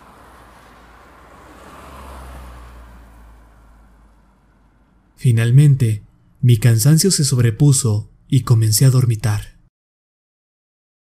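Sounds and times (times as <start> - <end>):
single car passing in front of a house: 0.0 - 5.2
speech: 5.2 - 9.6.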